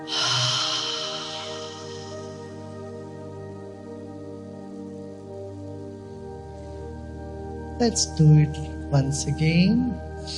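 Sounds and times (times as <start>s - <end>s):
deep breath out through the mouth: 0.0s - 2.5s
sustained tonal hum: 0.0s - 4.0s
speech: 7.8s - 10.3s.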